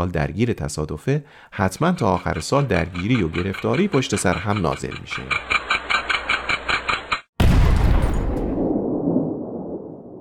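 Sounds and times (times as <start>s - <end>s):
speech: 0.0s - 5.7s
steady rhythmic pulsing sound: 1.6s - 7.2s
cannon shot booming to mark the New Year: 7.4s - 10.1s.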